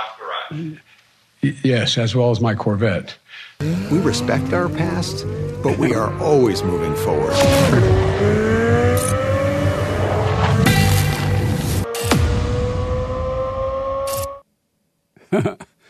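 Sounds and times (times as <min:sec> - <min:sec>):
speech: 0:00.5 - 0:09.3
car engine revving in a commercial: 0:03.6 - 0:14.4.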